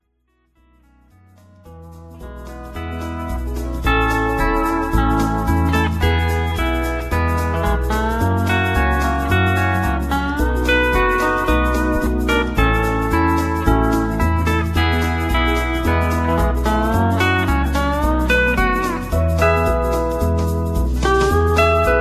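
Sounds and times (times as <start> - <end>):
steel guitar playing: 1.6 - 22.0.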